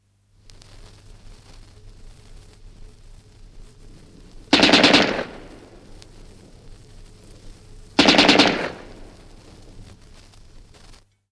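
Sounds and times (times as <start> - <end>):
short rapid bursts of a Bren gun machine gun: 4.5 - 5.7, 8.0 - 9.2.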